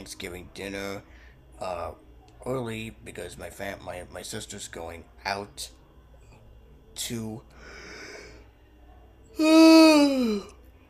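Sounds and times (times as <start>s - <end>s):
speech: 0.0s - 5.8s, 7.0s - 7.8s, 9.4s - 10.6s
drawn-out yawn: 9.4s - 10.6s.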